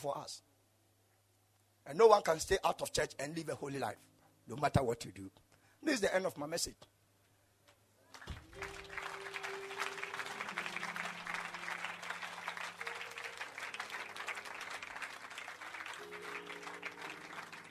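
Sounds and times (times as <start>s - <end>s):
speech: 0.0s - 0.5s, 1.8s - 7.0s
church audience clapping at the end of a sermon: 8.1s - 17.6s
sustained low musical tones humming: 8.4s - 17.6s.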